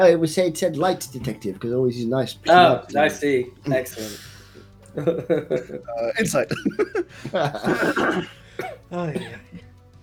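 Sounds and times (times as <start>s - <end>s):
speech: 0.0s - 4.3s, 5.0s - 9.7s
laughter: 4.9s - 8.4s
hoarse, wheezy coughing: 6.5s - 9.6s.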